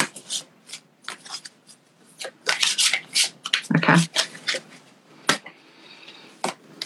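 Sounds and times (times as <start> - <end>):
tarot-style cards shuffled and pulled for a card reading: 0.0 - 5.5.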